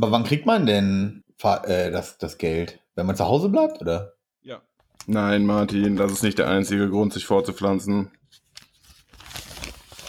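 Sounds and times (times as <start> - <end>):
speech: 0.0 - 8.2
newspaper pages rustling: 8.2 - 10.0
newspaper pages tearing: 8.4 - 10.0.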